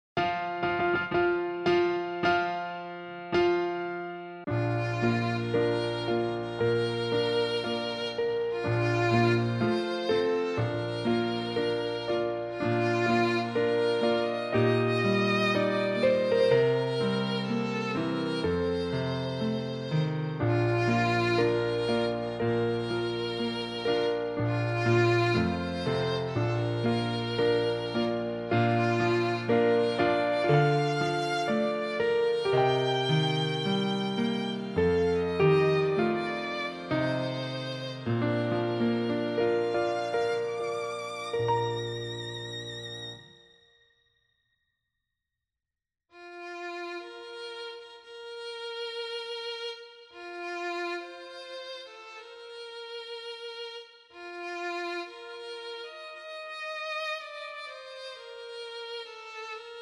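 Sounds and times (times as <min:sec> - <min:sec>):
traditional wedding processional on piano: 0:00.2 - 0:43.7, 0:54.2 - 0:59.8.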